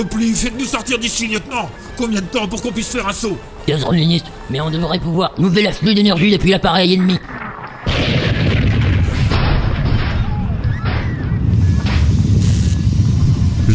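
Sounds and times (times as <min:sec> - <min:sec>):
speech: 0:00.0 - 0:07.4
crackling bursts: 0:06.9 - 0:13.7
massive explosion slamming into a spaceship: 0:07.2 - 0:13.6.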